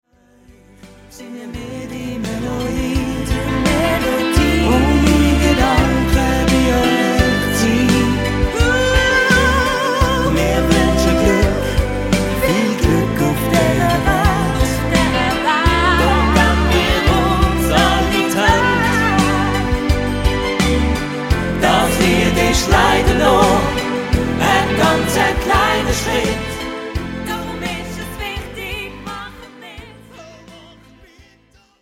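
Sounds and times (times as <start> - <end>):
Swiss German dialect hymn song: 0.5 - 31.6.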